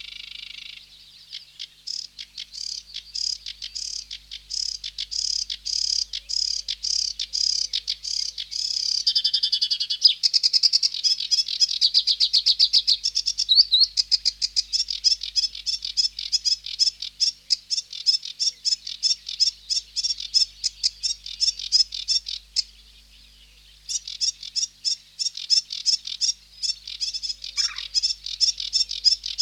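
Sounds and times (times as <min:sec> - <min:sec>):
sedge warbler Acrocephalus schoenobaenus singing: 0:00.0 - 0:29.4.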